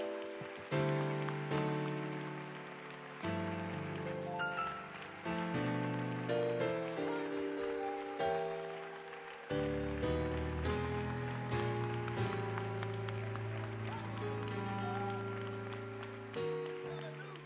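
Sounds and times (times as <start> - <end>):
audience clapping: 0.0 - 17.4.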